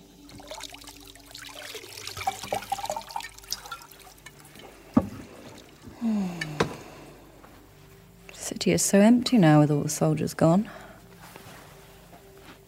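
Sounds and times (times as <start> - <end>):
liquid being poured into a vessel: 0.0 - 6.0
speech: 8.6 - 10.8.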